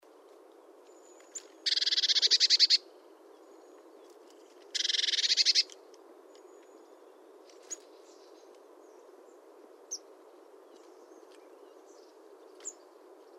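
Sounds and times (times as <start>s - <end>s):
background hiss: 0.1s - 13.3s
Eurasian blue tit Cyanistes caeruleus churring: 1.7s - 2.8s, 4.8s - 5.7s.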